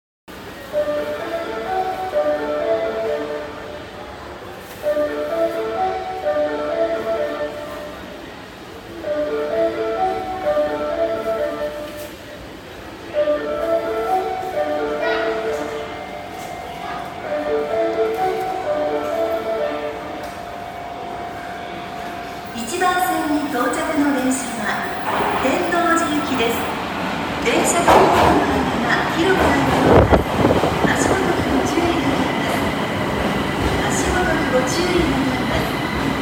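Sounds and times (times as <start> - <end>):
Osaka Metro Midosuji Line train approaching Namba station: 0.3 - 36.2.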